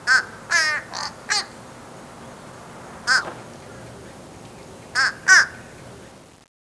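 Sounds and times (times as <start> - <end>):
crow cawing: 0.0 - 1.6, 3.0 - 3.4, 4.9 - 5.7.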